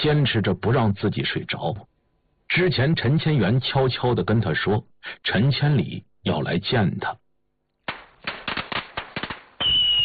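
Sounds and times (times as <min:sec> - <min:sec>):
speech: 0:00.0 - 0:01.9, 0:02.5 - 0:07.2
strings of firecrackers crackling by a roadside: 0:07.8 - 0:10.0
double-bang rockets bursting: 0:07.9 - 0:10.0.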